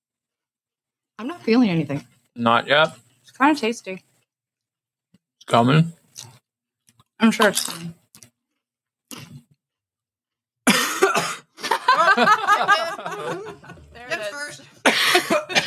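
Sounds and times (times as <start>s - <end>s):
speech: 1.2s - 4.1s, 5.5s - 6.3s, 7.2s - 8.0s, 12.2s - 13.8s
person coughing from chili chip powder in the back of the throat: 10.7s - 11.6s, 14.8s - 15.6s
laughter: 11.6s - 15.6s.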